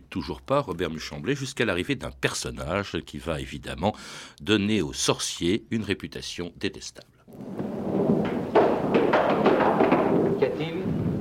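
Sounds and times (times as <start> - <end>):
speech: 0.1 - 7.6
thunder from a storm rumbling: 7.3 - 11.1
sharp rattling bursts: 7.4 - 11.1.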